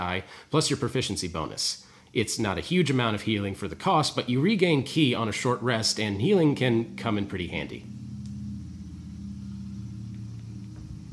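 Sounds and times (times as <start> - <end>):
speech: 0.0 - 8.0
motorcycle engine driving past outside: 4.6 - 11.1.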